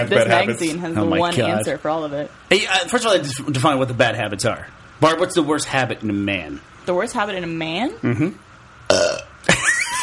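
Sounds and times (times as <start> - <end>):
speech: 0.0 - 9.2
burps: 8.0 - 9.5.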